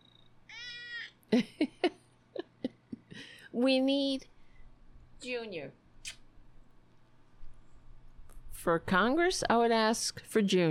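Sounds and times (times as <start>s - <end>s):
cat meowing: 0.5s - 1.2s
speech: 1.3s - 1.7s, 3.6s - 4.3s, 5.2s - 6.2s, 8.6s - 10.6s.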